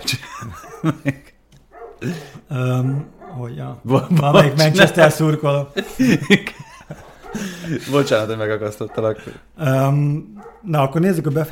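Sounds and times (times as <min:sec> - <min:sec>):
speech: 0:00.0 - 0:01.2, 0:02.0 - 0:06.5, 0:07.7 - 0:11.5
laughter: 0:00.0 - 0:01.4, 0:03.9 - 0:09.4
dog barking: 0:01.7 - 0:02.0, 0:03.1 - 0:03.5, 0:07.1 - 0:09.3, 0:10.4 - 0:10.8.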